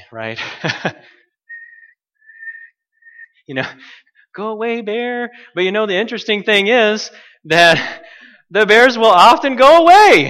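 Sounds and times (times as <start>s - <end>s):
speech: 0.1s - 1.2s, 3.5s - 10.2s
whistle blown in short high-pitched blasts: 1.5s - 3.4s.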